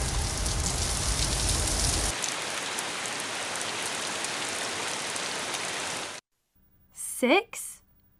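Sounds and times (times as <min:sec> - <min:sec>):
rain falling: 0:00.0 - 0:06.2
speech: 0:07.2 - 0:07.7.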